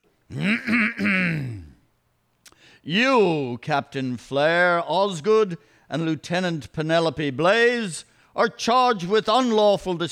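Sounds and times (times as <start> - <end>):
speech: 0.3 - 1.5, 2.8 - 10.1
man clearing his throat dramatically: 0.3 - 1.8.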